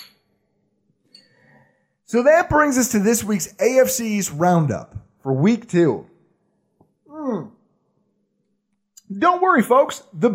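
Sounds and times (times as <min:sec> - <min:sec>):
glasses clinking together in a toast: 0:00.0 - 0:01.6
speech: 0:02.1 - 0:06.1, 0:09.1 - 0:10.3.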